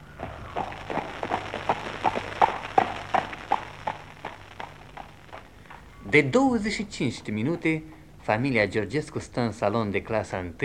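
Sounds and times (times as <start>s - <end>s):
hoofbeats of a horse pulling a carriage: 0.0s - 6.2s
speech: 6.1s - 10.6s.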